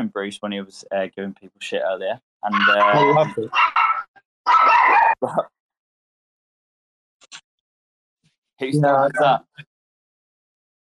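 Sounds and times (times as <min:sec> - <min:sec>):
speech: 0:00.0 - 0:03.8, 0:04.5 - 0:05.6, 0:08.6 - 0:09.7
faint brief dog yip: 0:02.6 - 0:05.2
dog barking: 0:03.6 - 0:05.2.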